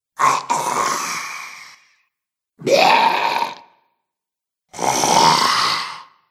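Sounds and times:
zombie sound effects: 0.2s - 1.9s, 2.6s - 3.7s, 4.7s - 6.2s.

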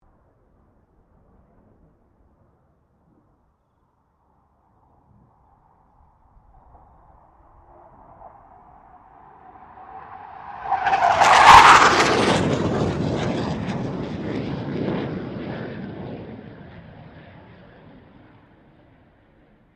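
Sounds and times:
BAE Hawk 127 jet aircraft passing: 6.4s - 19.1s.

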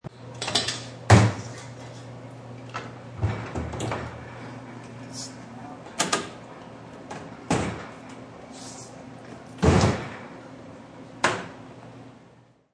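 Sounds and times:
commercial kitchen noises: 0.0s - 12.7s.

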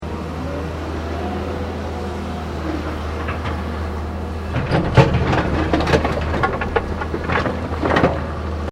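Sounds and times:
various construction machinery: 0.0s - 8.7s
construction earthmover scooping rocks: 3.0s - 8.7s.

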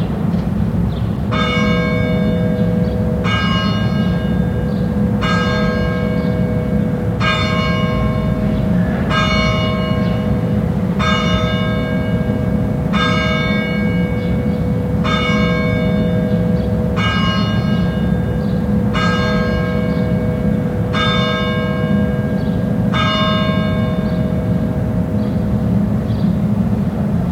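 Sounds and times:
church bells ringing in France: 0.2s - 27.1s.

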